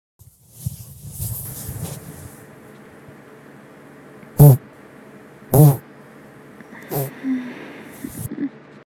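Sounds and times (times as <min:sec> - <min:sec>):
farts: 0:04.4 - 0:04.6, 0:05.6 - 0:05.8, 0:06.9 - 0:07.1.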